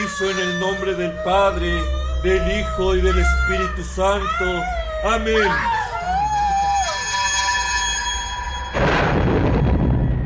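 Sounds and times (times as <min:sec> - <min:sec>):
eerie wavering tones: 0:00.0 - 0:10.2
speech: 0:00.2 - 0:05.8
huge explosion inside a church: 0:08.7 - 0:10.2.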